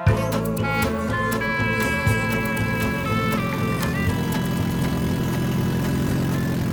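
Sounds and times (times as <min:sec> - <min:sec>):
car engine without a catalytic converter roaring through a bad exhaust: 0:00.1 - 0:06.7.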